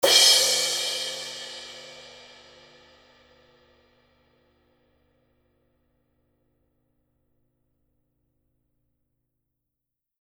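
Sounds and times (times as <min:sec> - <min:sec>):
black 20 inch big beat cymbal edge: 0:00.0 - 0:04.6.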